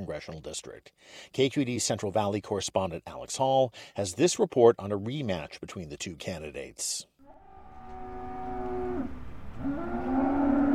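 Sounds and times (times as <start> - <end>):
speech: 0.0 - 7.1
cattle mooing at a stockyard auction in Hanford California: 7.2 - 10.7.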